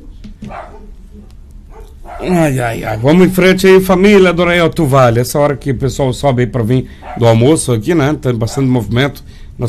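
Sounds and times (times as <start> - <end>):
dog barking: 0.5 - 1.0, 1.7 - 2.3, 7.0 - 7.3
speech: 2.0 - 9.6.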